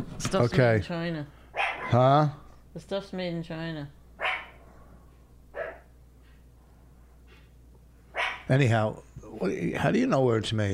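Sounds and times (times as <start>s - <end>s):
speech: 0.0s - 4.0s, 8.5s - 10.7s
dog barking: 1.6s - 2.0s, 4.2s - 4.6s, 5.5s - 5.9s, 8.1s - 8.5s.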